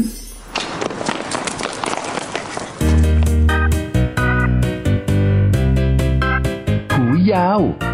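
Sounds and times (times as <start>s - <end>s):
running footsteps across a playground: 0.5s - 4.1s
bright bouncy music: 2.8s - 7.9s.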